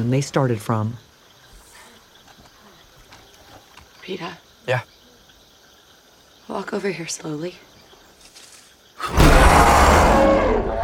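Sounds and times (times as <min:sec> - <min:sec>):
speech: 0:00.0 - 0:01.1, 0:04.1 - 0:04.9, 0:06.5 - 0:07.7, 0:09.0 - 0:10.8
baboon-like monkey roaring: 0:09.0 - 0:10.8.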